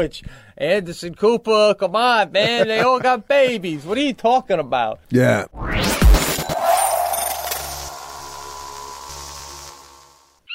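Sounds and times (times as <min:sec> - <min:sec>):
speech: 0:00.0 - 0:05.9
sharp crash: 0:05.6 - 0:10.3
hawk crying with a piercing screech: 0:06.1 - 0:10.2.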